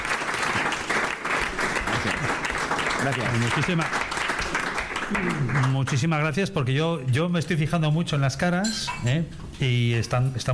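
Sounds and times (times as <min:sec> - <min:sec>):
audience applause for a restaurant kitchen team at a cooking event: 0:00.0 - 0:06.3
speech: 0:03.0 - 0:04.0, 0:05.1 - 0:10.5.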